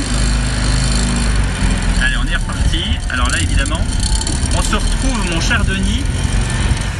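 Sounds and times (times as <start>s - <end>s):
Citroën 2CV 602 cc 25-horsepower two-cylinder engine running: 0.0s - 6.9s
speech: 5.5s - 6.3s.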